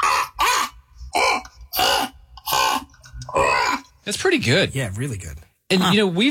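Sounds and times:
person imitating a crow's caw: 0.0s - 3.9s
speech: 4.1s - 6.3s.

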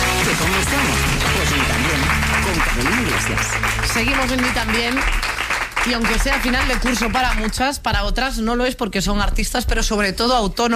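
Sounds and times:
crowd applauding: 0.0s - 7.8s
speech: 0.4s - 10.7s.

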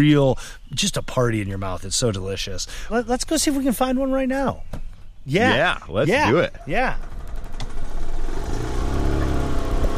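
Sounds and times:
speech: 0.0s - 7.1s
small golf cart motor humming in a cherry orchard: 7.0s - 9.9s.

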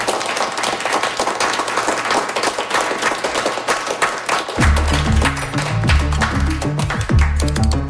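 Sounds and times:
crowd applauding: 0.0s - 7.8s
music with a deep bass line: 4.6s - 7.8s.

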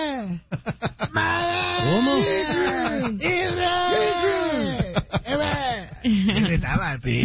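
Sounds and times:
laughter: 0.5s - 6.8s
person imitating a boxer's yell from a film: 1.1s - 6.0s
speech: 6.9s - 7.2s.

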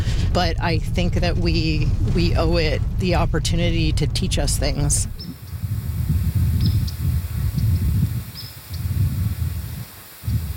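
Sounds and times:
steady low outdoor rustle: 0.0s - 10.5s
speech: 0.4s - 5.2s
birds chirping near a berry patch: 4.3s - 10.5s.

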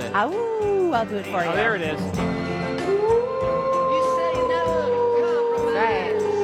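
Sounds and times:
speech: 0.2s - 2.4s
person imitating a wolf howl: 2.9s - 6.4s.

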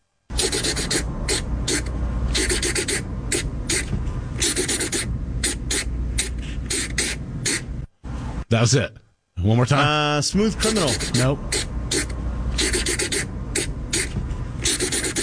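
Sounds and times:
marker scratching across paper: 0.3s - 7.7s, 10.6s - 15.2s
speech: 8.5s - 11.7s.

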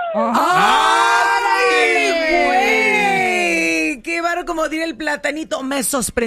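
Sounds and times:
mariachi-style grito yell: 0.1s - 3.8s
speech: 4.6s - 6.2s.

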